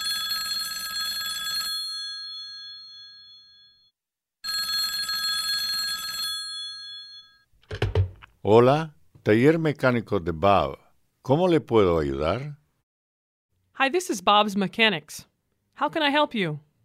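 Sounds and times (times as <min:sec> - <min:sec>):
telephone ringing at a mechanic's shop: 0:00.0 - 0:07.5
speech: 0:08.4 - 0:12.6, 0:13.8 - 0:16.7.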